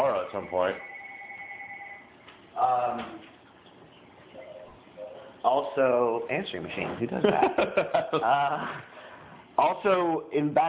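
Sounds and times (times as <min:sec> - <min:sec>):
home landline telephone ringing with electronic warble: 0:00.0 - 0:02.2
room noise: 0:00.0 - 0:10.6
speech: 0:00.3 - 0:01.0, 0:02.6 - 0:03.3, 0:05.4 - 0:08.9, 0:09.6 - 0:10.6
laughter: 0:07.1 - 0:08.8.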